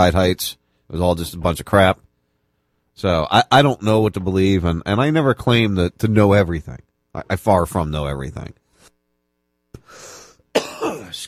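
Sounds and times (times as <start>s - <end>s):
speech: 0.0s - 2.0s, 3.0s - 8.6s
person coughing: 10.5s - 11.2s
raspy drawn-out throat clearing: 10.5s - 11.2s.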